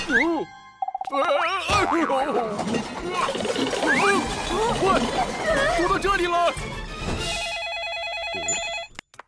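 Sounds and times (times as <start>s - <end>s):
speech: 0.1s - 0.6s, 1.1s - 7.3s
busy music: 0.1s - 8.6s
mobile phone ringing with a warbling electronic trill: 7.4s - 9.0s.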